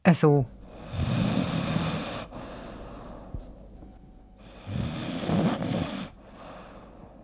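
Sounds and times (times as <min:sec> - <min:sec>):
speech: 0:00.1 - 0:00.6
deeply sleeping person snoring with rasping rattling inhales: 0:00.6 - 0:03.4, 0:04.4 - 0:07.2.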